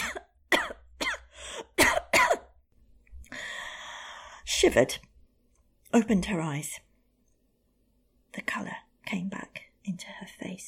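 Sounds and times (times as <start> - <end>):
person coughing: 0.0 - 2.6
speech: 4.6 - 5.1, 5.9 - 6.8, 8.4 - 10.6.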